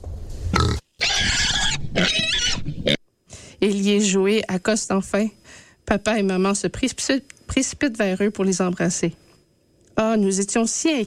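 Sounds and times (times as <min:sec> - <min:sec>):
big pig on a leash squealing in protest: 0:00.6 - 0:03.0
speech: 0:03.6 - 0:09.2, 0:10.0 - 0:11.0.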